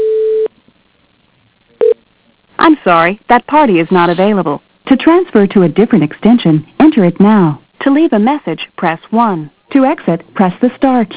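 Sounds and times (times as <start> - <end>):
telephone line tone during a call transfer to voicemail: 0.0 - 0.5
speech: 2.8 - 11.1.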